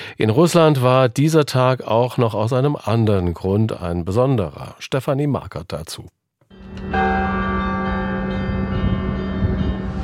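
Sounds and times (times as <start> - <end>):
speech: 0.2 - 6.2
church bells pealing: 6.5 - 10.0
low rumbling undertone: 6.6 - 10.0.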